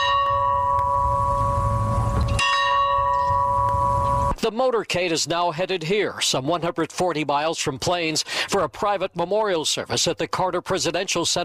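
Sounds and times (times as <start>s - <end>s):
large farm bell ringing outdoors: 0.0s - 4.4s
speech: 4.4s - 11.4s.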